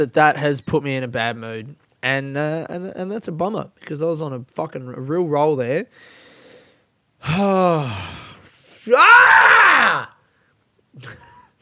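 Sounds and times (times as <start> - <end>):
speech: 0.0 - 6.2, 7.2 - 8.2, 8.8 - 10.1, 11.0 - 11.2
person giving a short quiet grunt: 7.2 - 10.1
person letting out a frustrated groaning scream: 8.8 - 10.2.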